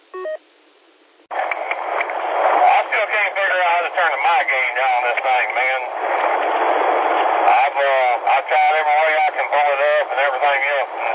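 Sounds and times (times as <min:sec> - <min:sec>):
faint repeating tones: 0:00.0 - 0:01.2
static-like noise burst: 0:00.0 - 0:11.1
cell phone ringing through a radio transmission: 0:00.2 - 0:00.4
speech: 0:04.0 - 0:06.4.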